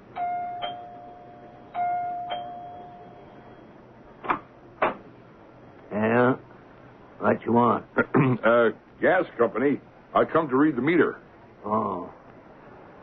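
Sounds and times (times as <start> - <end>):
two-tone doorbell chime: 0.1 - 3.7
speech: 7.4 - 12.2.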